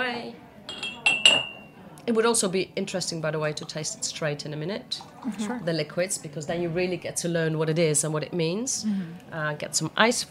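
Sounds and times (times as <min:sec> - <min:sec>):
glass clinking while genever is poured for a grapefruit cocktail: 0:00.7 - 0:01.8
speech: 0:02.1 - 0:10.2.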